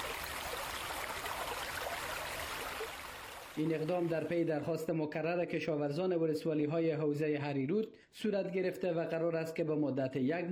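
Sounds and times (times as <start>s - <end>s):
water rushing from opened dam gates: 0.0s - 4.4s
speech: 3.6s - 10.4s.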